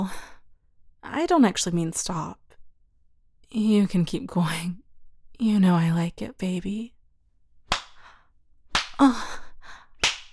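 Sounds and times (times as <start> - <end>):
speech: 1.2 - 2.4, 3.5 - 4.8, 5.4 - 7.0, 9.0 - 9.4
hand slapping bare skin: 7.7 - 8.1, 8.7 - 9.2, 10.0 - 10.3.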